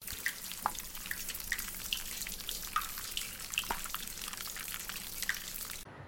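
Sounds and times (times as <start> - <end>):
water running from a tap left on in a washroom after handwashing: 0.0 - 5.8.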